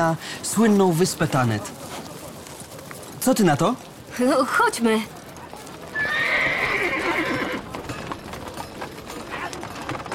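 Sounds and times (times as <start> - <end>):
speech: 0.0 - 2.1, 3.2 - 5.2
plodding horses' hooves clip-clopping on a hard town street surface: 0.0 - 10.1
horse whinnying loudly and shrilly: 5.9 - 7.7.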